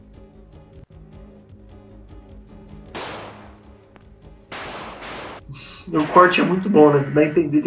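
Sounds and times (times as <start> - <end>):
steady tonal background: 1.0 - 7.6
gunshots in a played film scene: 2.9 - 3.8, 4.5 - 6.7
speech: 5.5 - 7.6.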